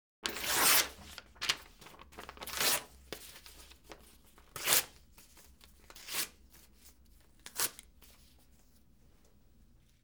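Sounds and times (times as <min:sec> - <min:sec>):
paper tearing: 0:00.2 - 0:04.0.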